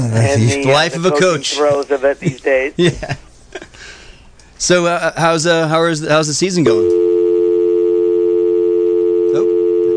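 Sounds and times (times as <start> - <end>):
speech: 0.0 - 3.2, 4.6 - 7.0
telephone dial tone after call drops: 6.9 - 9.9.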